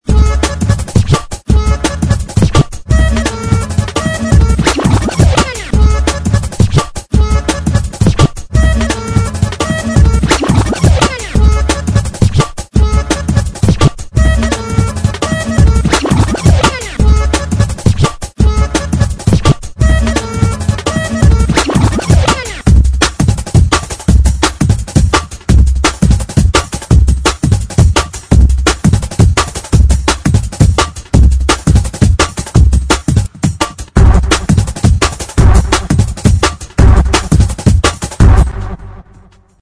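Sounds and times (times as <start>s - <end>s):
drum and bass beat: 0.0s - 39.6s
merry accordion: 0.1s - 13.6s, 14.2s - 22.6s
record scratching: 0.1s - 24.6s, 34.0s - 39.2s.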